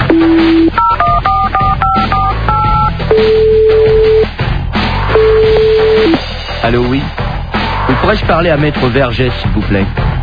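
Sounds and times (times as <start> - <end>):
long steady dial tone: 0.1 - 4.3, 5.2 - 6.2
speech: 0.2 - 0.9, 3.2 - 3.5, 6.7 - 7.2, 8.0 - 10.0.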